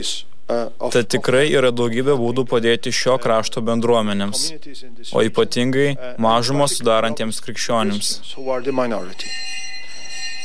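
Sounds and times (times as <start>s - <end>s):
speech: 0.0s - 9.6s
monastery bell ringing for lunch: 7.9s - 10.4s.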